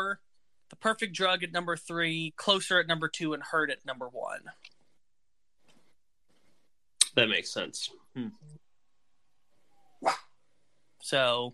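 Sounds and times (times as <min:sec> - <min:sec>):
speech: 0:00.1 - 0:04.7, 0:07.2 - 0:08.6, 0:11.0 - 0:11.5
female dog barking: 0:10.0 - 0:10.3.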